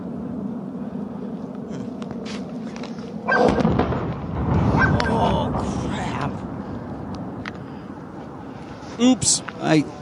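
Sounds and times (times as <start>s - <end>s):
distant explosions in combat footage of returning fire: 3.2s - 8.5s
speech: 9.0s - 10.0s.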